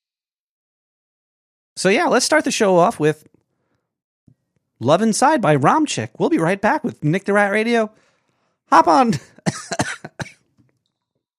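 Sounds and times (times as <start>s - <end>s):
speech: 1.8s - 3.4s, 4.8s - 8.0s, 8.7s - 10.0s
coughing: 9.1s - 10.5s.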